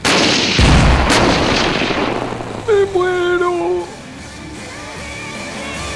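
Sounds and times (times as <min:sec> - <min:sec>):
deep booming artillery blasts from a tank army: 0:00.0 - 0:04.4.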